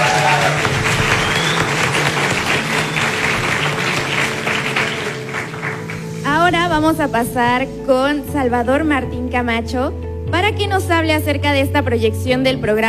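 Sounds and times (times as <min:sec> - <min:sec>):
crowd applauding: 0:00.0 - 0:06.3
speech: 0:06.8 - 0:12.8.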